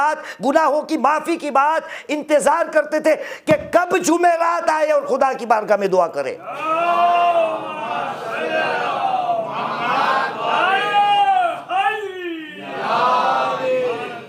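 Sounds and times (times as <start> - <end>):
speech: 0.0 - 7.5
large crowd chanting a religious slogan in unison: 6.5 - 11.8, 12.5 - 14.2.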